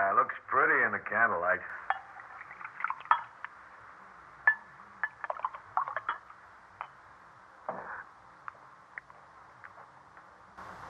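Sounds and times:
speech: 0.2 - 2.0
glasses clinking: 1.8 - 3.5, 4.5 - 7.0
wine poured into a glass: 1.8 - 3.5, 4.5 - 6.3.

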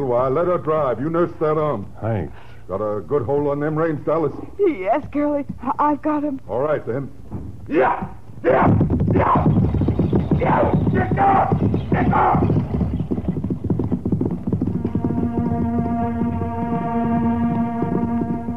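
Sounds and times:
buckboard wagon wheels rumbling: 0.0 - 2.0, 2.7 - 18.5
horses pulling a buckboard wagon galloping: 0.0 - 2.0, 2.6 - 18.5
speech: 0.0 - 9.6, 10.4 - 12.6
droning tone: 14.5 - 18.5.

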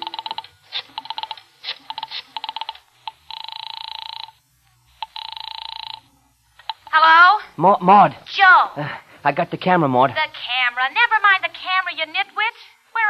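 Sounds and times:
rotary telephone dial clicking pulses: 0.0 - 4.3, 5.0 - 6.0
buzzing telephone ring tones: 0.0 - 7.0
speech: 7.6 - 13.0.

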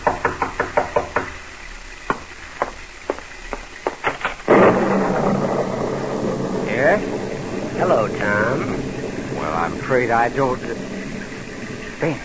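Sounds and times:
knocking on a door: 0.0 - 1.4
rush of wind-like noise on a stormy night: 4.5 - 12.2
speech: 10.0 - 10.8, 12.0 - 12.2.

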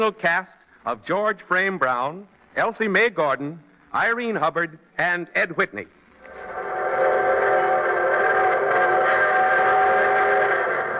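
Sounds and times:
speech: 0.0 - 6.0
train whistle blowing: 6.6 - 10.9.

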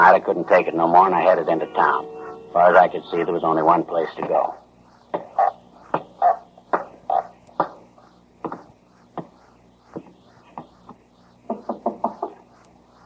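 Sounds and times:
speech: 0.0 - 4.6
loud heavy knocking on a store's door: 11.5 - 12.3.

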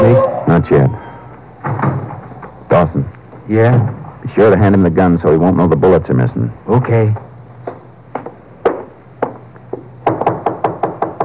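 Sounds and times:
low steady hum: 0.0 - 11.2
speech: 0.1 - 1.0, 2.7 - 7.2
knocking on a door: 7.2 - 11.2.

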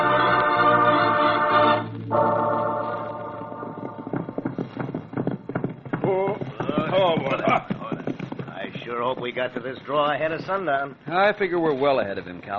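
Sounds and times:
musical passage: 0.0 - 4.4
horses clip-clopping as riders set off: 2.9 - 12.5
speech: 9.1 - 12.5.

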